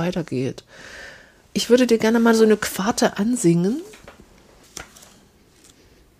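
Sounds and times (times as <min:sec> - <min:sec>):
speech: 0:00.0 - 0:01.0, 0:01.6 - 0:03.9
paper pages of a hymnbook supplement booklet being leafed through: 0:03.8 - 0:05.9.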